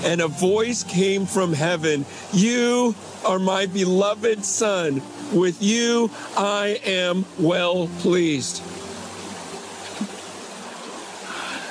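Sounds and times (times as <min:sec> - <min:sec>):
speech: 0:00.0 - 0:08.8
Jordan River water flowing: 0:00.0 - 0:11.6.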